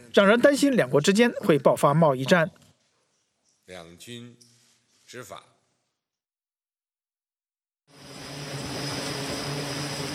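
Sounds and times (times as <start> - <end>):
speech: 0.2 - 2.6, 3.7 - 4.5, 5.1 - 5.5
navy jet aircraft engine roar taking off from carrier: 7.9 - 10.1.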